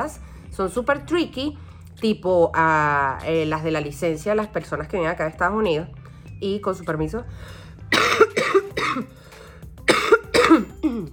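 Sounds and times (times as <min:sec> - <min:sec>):
speech: 0:00.0 - 0:07.6
harsh loud coughs from someone getting over a bad cold: 0:07.9 - 0:09.2, 0:09.9 - 0:11.1.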